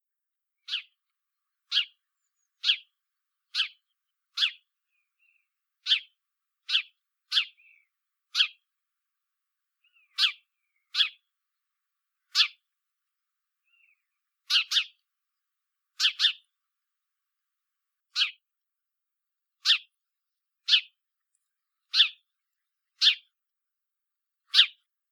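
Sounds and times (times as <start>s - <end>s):
house sparrow Passer domesticus chirping: 0.6s - 1.0s, 1.6s - 8.7s, 9.8s - 11.3s, 12.2s - 12.6s, 13.6s - 15.1s, 16.0s - 16.5s, 18.1s - 18.4s, 19.6s - 19.9s, 20.6s - 23.4s, 24.5s - 24.8s.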